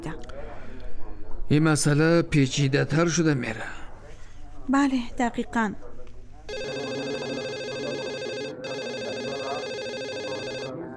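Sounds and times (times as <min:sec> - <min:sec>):
faint murmur: 0:00.0 - 0:10.9
speech: 0:01.5 - 0:03.8, 0:04.7 - 0:05.9
telephone ringing with bright electronic tone: 0:06.5 - 0:10.8.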